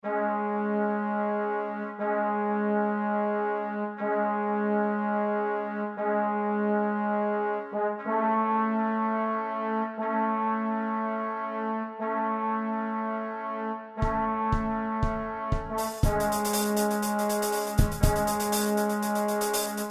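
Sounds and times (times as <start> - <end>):
trombone: 0.0 - 19.8
trumpet: 0.0 - 19.8
drum kit: 14.0 - 19.8.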